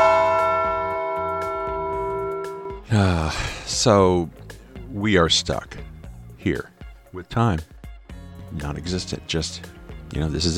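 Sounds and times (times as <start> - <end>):
bell ringing: 0.0 - 2.8
speech: 2.9 - 5.8, 6.4 - 7.7, 8.6 - 10.5.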